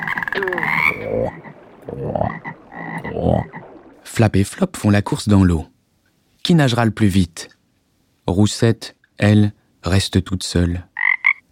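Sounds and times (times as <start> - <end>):
chorus of frogs croaking around a pond: 0.0 - 4.0, 10.9 - 11.5
speech: 0.4 - 1.4, 4.2 - 5.7, 6.4 - 7.6, 8.3 - 10.9.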